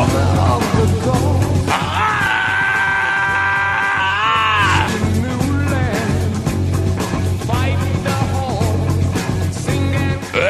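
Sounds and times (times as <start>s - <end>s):
loud rock track with pounding low-end drive: 0.0s - 10.4s
high wavering wailing vocal: 1.7s - 5.0s.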